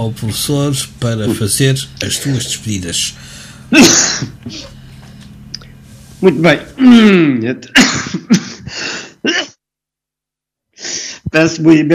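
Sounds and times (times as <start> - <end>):
speech: 0.0 - 4.8, 6.2 - 8.4, 11.4 - 11.9
allergic coughing fit with harsh raspy bursts: 3.7 - 4.8, 6.8 - 9.6.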